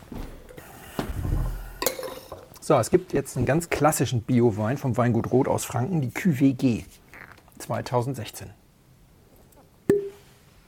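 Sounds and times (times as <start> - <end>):
speech: 2.7 - 7.0, 7.7 - 8.6
wine glass being handled and clinking: 9.9 - 10.2.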